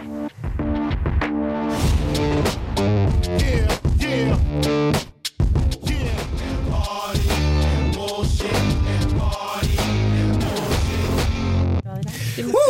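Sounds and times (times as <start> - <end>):
recorded hip-hop track with punchy beats: 0.0 - 11.7.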